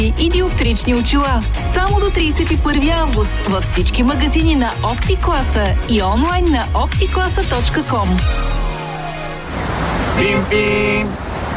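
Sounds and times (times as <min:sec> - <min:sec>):
speech: 0:00.1 - 0:08.6, 0:09.6 - 0:11.2
steady hum of road traffic: 0:08.0 - 0:11.5
car horn honking: 0:09.4 - 0:11.2.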